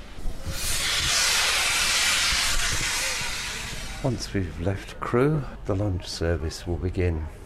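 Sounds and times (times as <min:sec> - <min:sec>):
steam locomotive hissing: 0:00.0 - 0:05.6
speech: 0:04.0 - 0:07.4.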